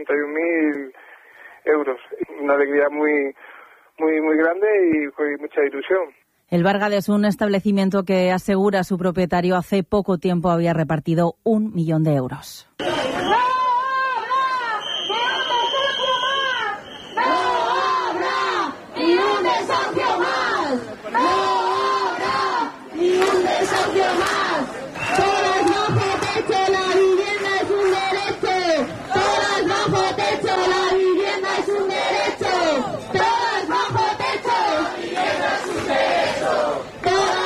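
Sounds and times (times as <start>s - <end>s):
speech: 0.0s - 13.4s
protest crowd chanting at a housing rally: 12.8s - 37.4s.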